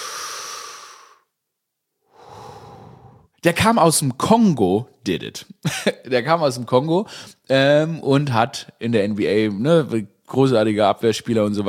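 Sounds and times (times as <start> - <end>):
long deep breath drawn in: 0.0 - 1.3, 2.0 - 3.4, 7.1 - 7.4
speech: 3.4 - 11.6.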